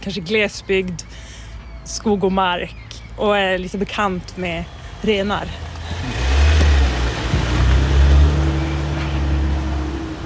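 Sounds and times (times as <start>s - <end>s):
speech: 0.0s - 6.1s
car engine revving and driving away: 4.6s - 10.2s.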